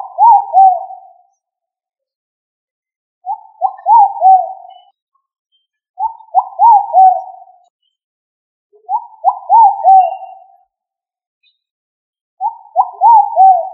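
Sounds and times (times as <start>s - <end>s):
pigeon cooing in soft low hoarse bubbling phrases: 0.0s - 1.2s, 3.3s - 4.8s, 6.0s - 7.5s, 8.9s - 10.5s, 12.4s - 13.7s.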